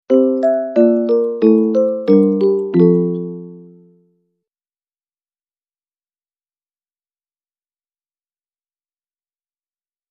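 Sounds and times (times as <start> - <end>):
music box playing: 0.1 - 4.0.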